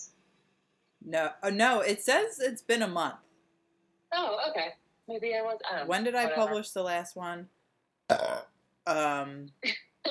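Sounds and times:
speech: 1.0s - 3.3s, 4.1s - 10.1s
loud burp: 8.1s - 8.6s.

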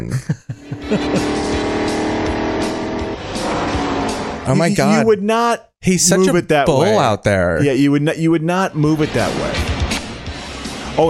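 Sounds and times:
laughter: 0.0s - 1.6s, 4.5s - 5.4s
speech: 0.1s - 1.5s, 4.5s - 9.7s
stock cars racing at a Winston Cup race: 0.6s - 7.8s.

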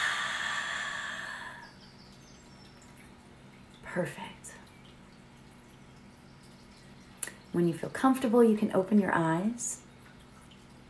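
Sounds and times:
long airy exhale after a deep breath in: 0.0s - 1.7s
speech: 3.9s - 4.6s, 7.6s - 9.8s.

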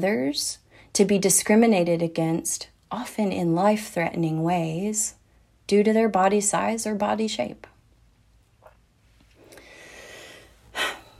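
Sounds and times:
speech: 0.0s - 7.7s
soft breathing: 9.1s - 11.1s
person taking a sharp loud breath: 9.4s - 11.1s.

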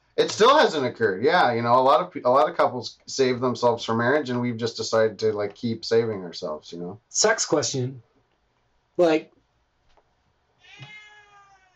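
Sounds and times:
speech: 0.2s - 8.1s, 9.0s - 9.4s
cat meowing: 10.6s - 11.7s.

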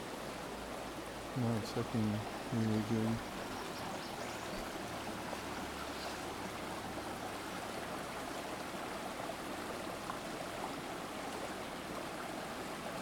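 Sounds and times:
running water like a stream: 0.0s - 13.0s
speech: 1.4s - 3.4s.

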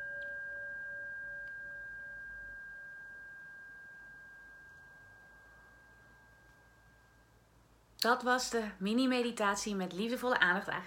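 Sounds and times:
singing bowl ringing: 0.0s - 7.8s
speech: 8.0s - 10.8s.

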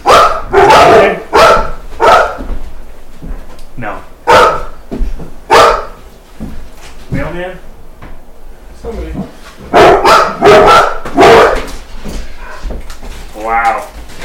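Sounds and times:
dogs barking loudly and excitedly: 0.0s - 2.6s, 4.2s - 6.0s, 9.6s - 12.8s.

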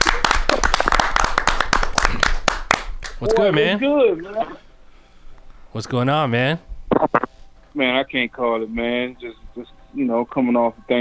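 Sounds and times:
round of applause with sharp fast hand claps: 0.0s - 3.6s
speech: 3.2s - 4.6s, 5.7s - 6.7s, 7.8s - 10.9s.

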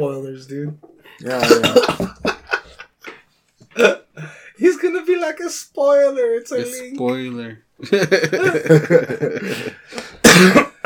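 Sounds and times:
speech: 0.0s - 2.3s, 5.2s - 10.6s
person coughing into their arm: 1.3s - 2.3s, 3.7s - 4.1s, 10.2s - 10.8s
laughter: 1.3s - 3.2s, 7.8s - 10.5s.

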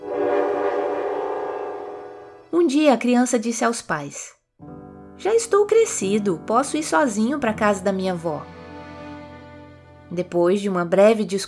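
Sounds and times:
train horn blaring in one long chord-like blast: 0.0s - 2.6s
speech: 2.5s - 4.4s, 5.2s - 8.6s, 10.1s - 11.4s.

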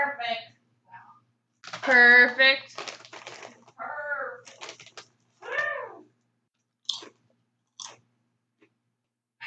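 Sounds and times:
speech: 1.8s - 2.9s
crunchy chewing of potato chips: 2.7s - 3.8s, 4.4s - 5.6s, 6.8s - 8.7s.

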